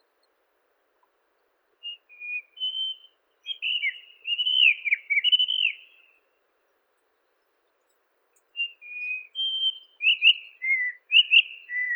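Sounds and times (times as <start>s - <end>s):
white-throated rock thrush song of mellow whistles and slurred notes: 1.8s - 6.4s, 8.4s - 11.9s.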